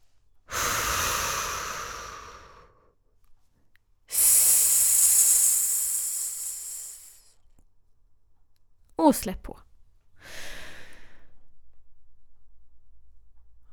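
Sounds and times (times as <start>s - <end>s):
person breathing during a breathing exercise: 0.5s - 2.8s, 4.1s - 7.3s, 10.2s - 11.3s
slow deep exhale during a breathing exercise: 0.5s - 3.0s, 4.1s - 7.3s, 10.2s - 11.5s
speech: 9.1s - 9.7s.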